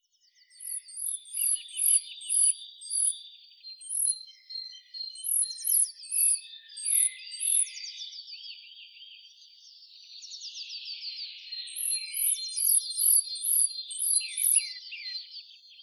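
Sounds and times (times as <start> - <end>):
lower twittering and buzzy bird notes: 0.3 - 15.8
Eurasian blue tit Cyanistes caeruleus calling: 0.6 - 3.2, 5.2 - 7.7, 11.8 - 14.8.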